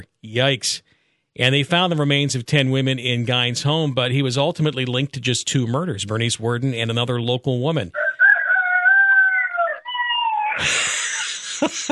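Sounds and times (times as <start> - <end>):
speech: 0.0 - 8.0, 11.6 - 11.9
rooster crowing: 8.0 - 10.6
laughter: 10.5 - 11.9.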